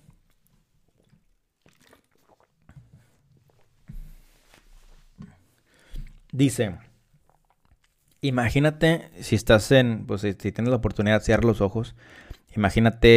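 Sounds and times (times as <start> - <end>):
person drinking water with wet gulps and swallowing: 0.0 - 4.2, 5.1 - 8.2
faint microphone handling noise: 2.8 - 8.2
speech: 6.4 - 6.9, 8.2 - 13.1.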